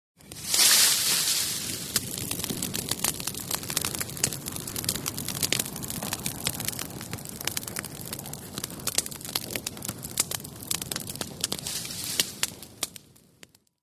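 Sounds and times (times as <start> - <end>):
campfire roaring and crackling outdoors: 0.2 - 13.8.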